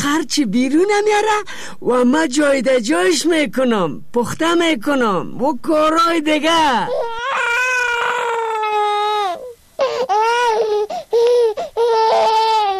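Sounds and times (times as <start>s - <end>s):
speech: 0.2s - 7.0s
baby crying after waking up: 6.8s - 12.7s.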